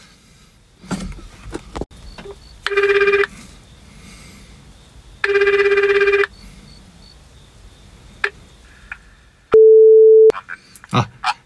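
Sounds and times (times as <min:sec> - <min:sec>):
phone ringback tone while calling the police station: 0:02.7 - 0:03.3, 0:05.3 - 0:06.3, 0:09.6 - 0:10.3
short steady beep: 0:09.6 - 0:10.3.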